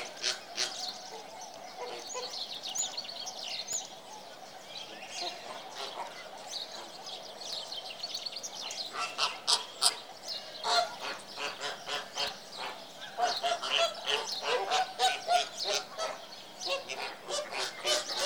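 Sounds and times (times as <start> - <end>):
flamingos honking in a dense flock: 0.0 - 3.0, 5.1 - 7.3, 8.9 - 18.2.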